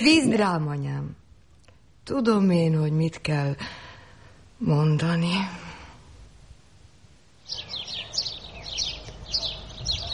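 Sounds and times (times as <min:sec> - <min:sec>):
speech: 0:00.0 - 0:01.2, 0:02.1 - 0:03.9, 0:04.6 - 0:05.7
sparrows chirping: 0:07.4 - 0:10.1.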